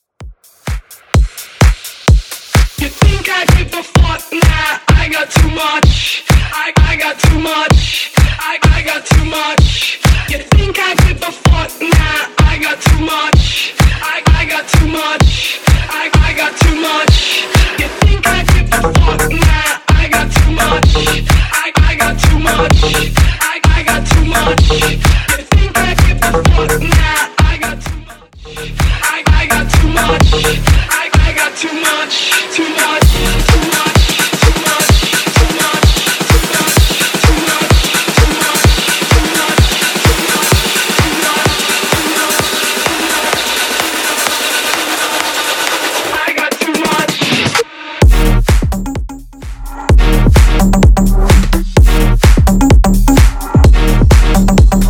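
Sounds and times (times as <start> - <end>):
electronic dance music at 128 bpm: 0.0 - 54.8.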